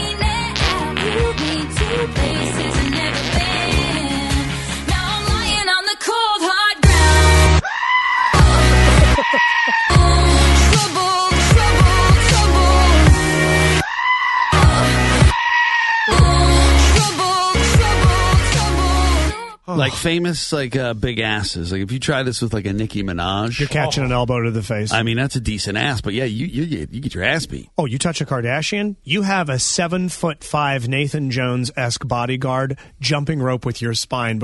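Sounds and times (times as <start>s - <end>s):
loud pop song: 0.0s - 7.6s, 8.3s - 9.2s, 9.9s - 13.8s, 14.6s - 15.4s, 16.1s - 20.1s, 23.6s - 24.2s
edited goat screaming: 7.6s - 10.0s, 13.8s - 14.7s, 15.3s - 16.2s
laughter: 8.4s - 10.0s, 23.5s - 24.2s
speech: 19.9s - 34.4s.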